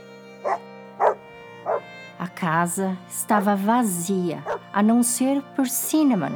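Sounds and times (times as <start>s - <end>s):
small dog barking: 0.4s - 1.8s
speech: 2.4s - 6.3s.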